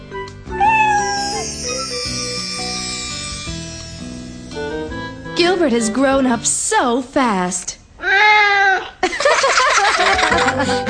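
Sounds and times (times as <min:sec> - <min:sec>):
music: 0:00.0 - 0:06.7, 0:10.3 - 0:10.8
high thin kitten meowing: 0:00.5 - 0:01.2
speech: 0:05.5 - 0:07.8, 0:10.3 - 0:10.8
laughter: 0:09.0 - 0:10.8.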